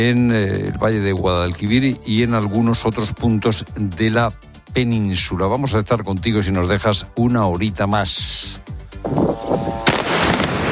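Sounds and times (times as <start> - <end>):
speech: 0.0 - 9.4
sharp bangs: 9.1 - 10.7
gunfire during a nighttime exchange of fire in Lebanon: 9.8 - 10.7.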